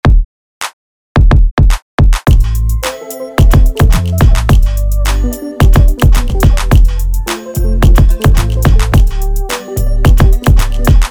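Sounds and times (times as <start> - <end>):
thumping kick drums: 0.0 - 0.3, 1.2 - 2.5, 3.4 - 4.7, 5.6 - 7.0, 7.8 - 9.2, 10.0 - 11.0.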